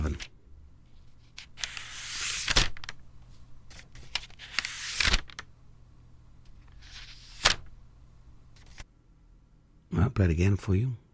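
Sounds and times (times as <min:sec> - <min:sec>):
book pages turning: 0:00.0 - 0:00.3, 0:00.9 - 0:05.5, 0:06.5 - 0:07.7, 0:08.6 - 0:08.9
speech: 0:10.2 - 0:11.0.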